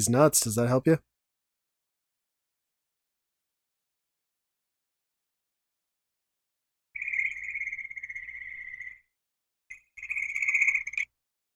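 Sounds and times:
speech: 0.0s - 1.1s
mating frogs calling in a high rapid buzzing trill: 7.0s - 9.1s, 9.7s - 11.1s.

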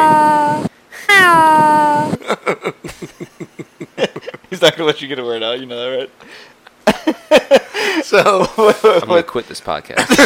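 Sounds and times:
person imitating a cat meowing: 0.0s - 2.2s
speech: 4.6s - 10.2s.

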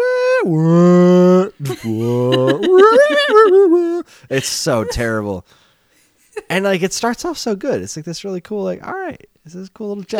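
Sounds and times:
voice imitating a badly pitch-shifted singing sample: 0.0s - 4.1s
speech: 0.4s - 0.9s, 1.7s - 2.4s, 4.3s - 5.6s, 6.4s - 10.1s
laughter: 1.4s - 5.4s.

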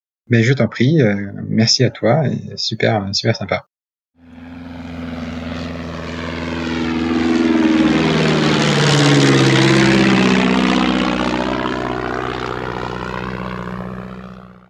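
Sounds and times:
speech: 0.3s - 3.7s
radial engines of a Swiss Super Constellation four-engine propeller airliner droning: 4.2s - 14.6s.

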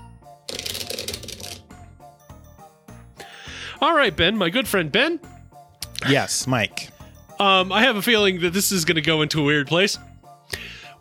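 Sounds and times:
deck of cards riffle-shuffled: 0.5s - 1.6s
speech: 3.8s - 5.3s, 6.0s - 10.1s.

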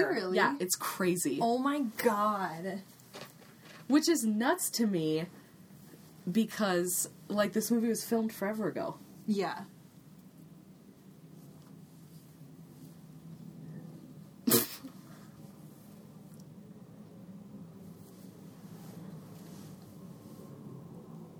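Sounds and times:
speech: 0.0s - 3.3s, 3.9s - 5.4s, 6.2s - 9.7s
steady low hum: 0.0s - 21.3s
cat sneezing: 14.4s - 15.0s.

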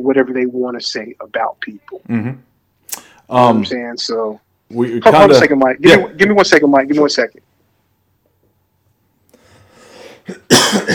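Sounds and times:
speech: 0.0s - 7.5s
short preparatory breath: 9.3s - 10.3s
person coughing: 10.2s - 10.9s.

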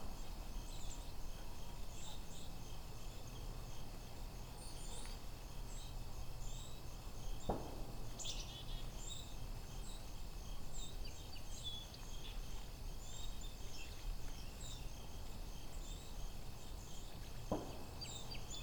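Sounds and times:
flock of white-throated sparrows and song sparrows chipping and calling in a vineyard region: 0.2s - 18.6s
faint thumps from automated air guns used to keep birds off: 7.5s - 7.9s, 17.5s - 18.0s.

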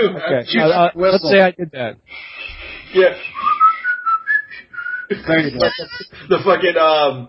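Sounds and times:
speech: 0.0s - 3.5s, 5.1s - 7.2s
person whistling a short bouncy jingle: 2.2s - 5.1s
laughter: 2.4s - 3.7s, 5.1s - 6.8s.

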